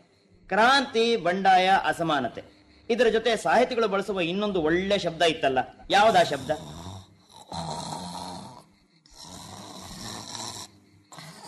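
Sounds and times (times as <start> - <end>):
speech: 0.5 - 6.8
sleeping woman snoring loudly: 6.0 - 11.4.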